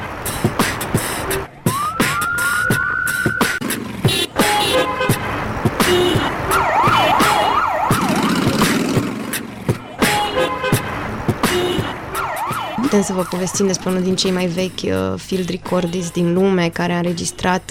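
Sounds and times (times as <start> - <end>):
car engine rumble at a city intersection in Drumul Taberei: 0.0 - 17.7
emergency siren rising: 1.6 - 3.6, 6.0 - 8.6, 12.0 - 14.0
honking car horns: 3.8 - 7.8, 9.8 - 12.9
speech: 13.2 - 17.7.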